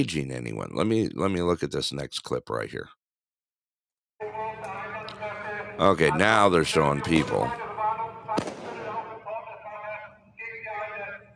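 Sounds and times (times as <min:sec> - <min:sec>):
speech: 0:00.0 - 0:03.0, 0:05.8 - 0:07.6
flashbang grenade going off in a street: 0:08.4 - 0:09.2.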